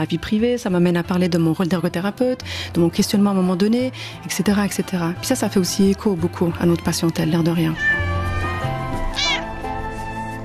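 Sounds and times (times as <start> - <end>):
speech: 0.0 - 8.2
steady humming tonal background: 7.6 - 10.1
cat meowing: 7.7 - 9.7.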